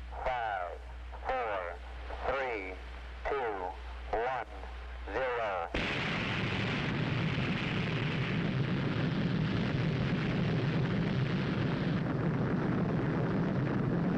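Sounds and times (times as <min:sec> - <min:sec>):
voice counting down for a missile launch: 0:00.1 - 0:05.8
missile launch roar: 0:05.8 - 0:14.1.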